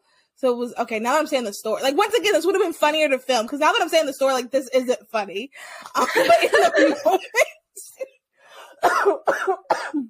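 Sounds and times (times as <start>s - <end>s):
speech: 0.4s - 8.1s, 8.8s - 10.0s
laughter: 6.0s - 7.5s
short wheezy intake of breath: 8.4s - 8.8s
harsh rasping coughs: 8.8s - 10.0s.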